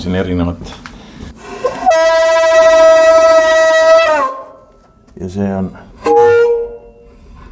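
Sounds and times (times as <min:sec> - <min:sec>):
speech: 0:00.0 - 0:00.8, 0:05.2 - 0:05.9
ship's foghorn blast: 0:01.6 - 0:04.7, 0:06.0 - 0:07.2.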